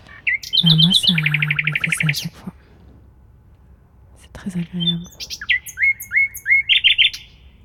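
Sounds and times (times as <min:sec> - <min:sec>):
faint low rumble of ambient noise: 0:00.0 - 0:07.6
small birds chirping in spring: 0:00.0 - 0:07.6
speech: 0:00.6 - 0:02.6, 0:04.4 - 0:05.5.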